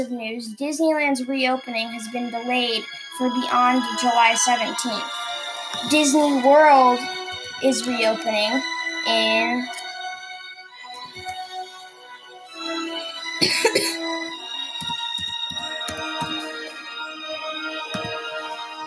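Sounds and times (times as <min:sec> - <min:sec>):
speech: 0:00.0 - 0:09.8, 0:13.4 - 0:13.8
music with a sustained melodic tone: 0:00.0 - 0:18.8
person coughing: 0:13.4 - 0:14.1.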